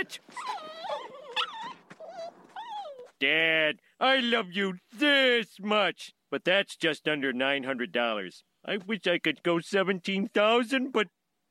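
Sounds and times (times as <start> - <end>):
speech: 0.0 - 0.6, 3.2 - 11.4
several wolves howling together: 0.3 - 3.1.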